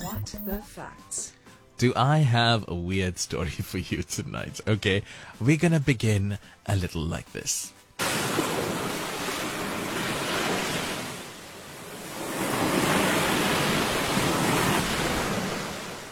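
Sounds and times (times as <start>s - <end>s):
speech: 0.4s - 8.2s
ocean waves washing ashore: 8.0s - 16.1s.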